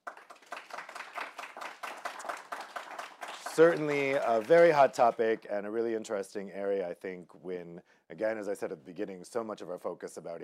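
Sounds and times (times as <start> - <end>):
audience applauding panelists after a panel discussion: 0.0 - 5.4
speech: 3.6 - 10.4.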